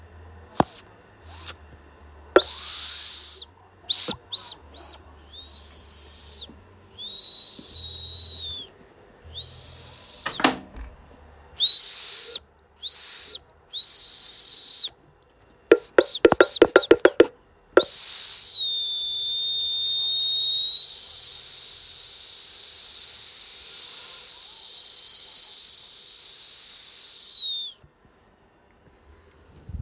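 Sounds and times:
high thin whistles from a cup rim: 2.4 - 10.5, 11.6 - 15.0, 15.7 - 27.8
sharp taps on the cup bottom: 15.7 - 18.0.

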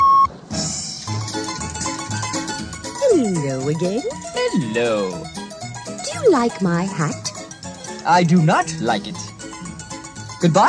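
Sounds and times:
short clear electronic read-along page-turn beep on a cassette recording: 0.0 - 0.3
busy music: 0.5 - 10.6
speech: 3.5 - 5.4, 6.2 - 7.3, 8.0 - 9.3, 10.4 - 10.6.

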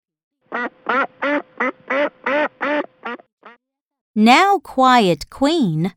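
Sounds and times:
duck quacking: 0.5 - 3.6
speech: 4.2 - 5.9.

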